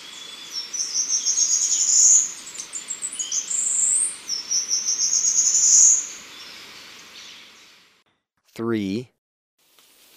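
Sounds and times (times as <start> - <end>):
Choco Warbler giving a sustained high thin trill in Ecuador: 0.1 - 6.5
speech: 8.6 - 9.1.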